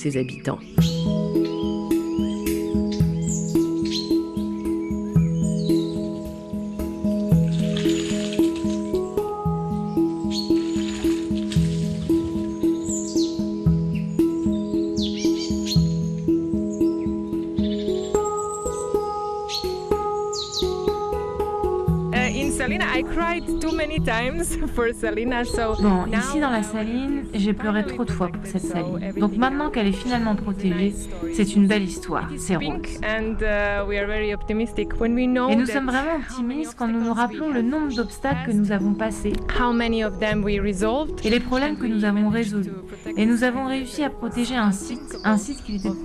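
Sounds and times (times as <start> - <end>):
speech: 0.0 - 1.8, 23.6 - 46.0
birds chirping in a salt-pan wetland on the Adriatic: 0.0 - 46.0
steady droning tonal background: 0.8 - 46.0.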